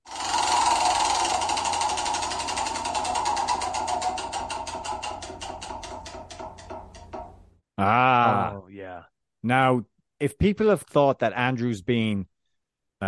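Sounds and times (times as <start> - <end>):
prize wheel spinning with rapid ticking clicks: 0.0 - 7.4
speech: 7.8 - 12.3.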